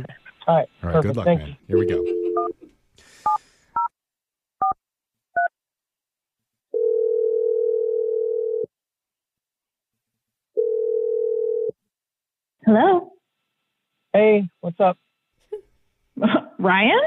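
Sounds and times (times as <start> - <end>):
speech: 0.0 - 3.4, 12.7 - 13.1, 14.2 - 15.1, 16.2 - 17.0
long steady telephone ringing tone: 1.7 - 2.5, 6.7 - 8.7, 10.6 - 11.7.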